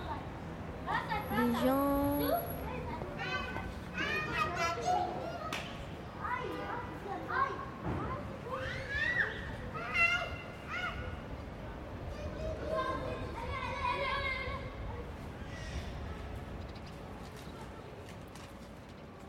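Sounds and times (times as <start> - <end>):
children shouting and chattering in a château courtyard: 0.0 - 19.2
bird calls: 15.4 - 17.7.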